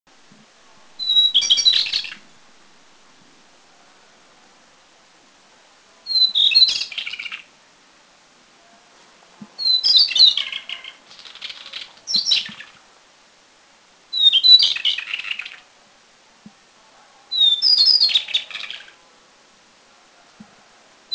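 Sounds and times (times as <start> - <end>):
White-browed Shortwing in Taiwan: 1.0 - 2.3, 6.0 - 7.5, 9.6 - 12.8, 14.1 - 15.7, 17.3 - 19.0.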